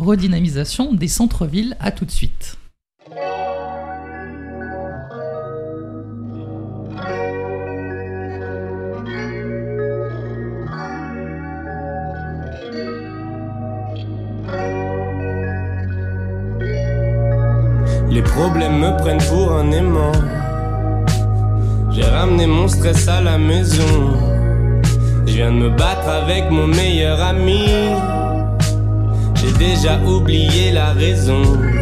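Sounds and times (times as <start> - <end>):
speech: 0.0 - 2.6, 22.8 - 24.3, 25.3 - 28.2, 29.4 - 31.8
effects-laden chorused guitar: 3.0 - 31.8
steady bass line: 15.3 - 31.8.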